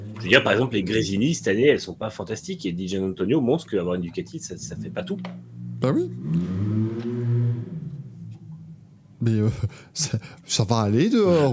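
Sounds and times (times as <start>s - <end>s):
speech: 0.2s - 6.8s, 9.2s - 11.5s
motorbike or car engine at high revs hitting the rev limiter outside: 4.6s - 9.0s
laughter: 9.3s - 10.4s.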